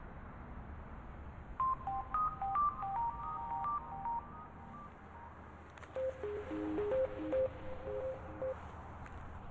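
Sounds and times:
phone ringing with a melodic electronic tone: 1.6 - 8.8.

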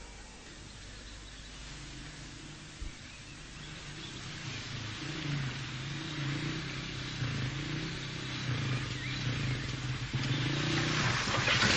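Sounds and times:
car engine with a faulty spark plug revving unevenly: 3.4 - 11.7.

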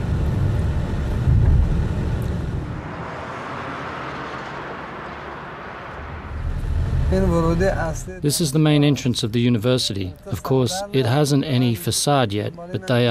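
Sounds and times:
tire hiss: 0.0 - 9.8
car engine rumble driving around turns: 0.0 - 13.0
road noise: 0.0 - 13.0
speech: 7.1 - 13.0.

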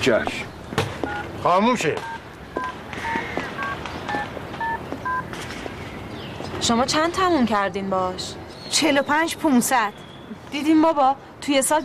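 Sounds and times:
speech: 0.0 - 0.6, 1.4 - 2.7, 6.7 - 11.8
touch-tone telephone keypad beeps while dialing: 1.1 - 1.3, 2.0 - 5.2.

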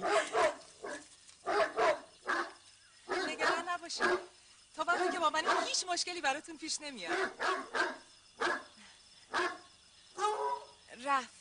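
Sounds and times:
dog barking: 0.0 - 4.3, 4.9 - 5.8, 7.1 - 8.7, 9.3 - 10.7
speech: 3.9 - 8.0, 11.1 - 11.3.

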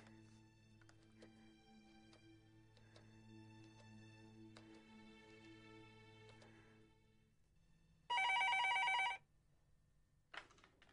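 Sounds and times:
loud telephone bell ringing: 8.1 - 9.2.

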